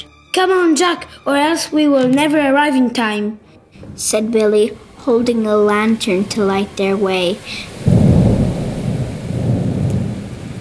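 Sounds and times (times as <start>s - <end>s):
speech: 0.4s - 8.0s
deep rolling thunder: 3.8s - 10.5s
heavy rain hissing: 3.8s - 10.5s.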